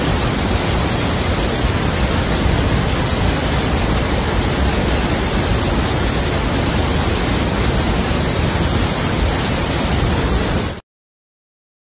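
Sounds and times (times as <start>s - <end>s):
large waterfall roaring: 0.0s - 10.8s.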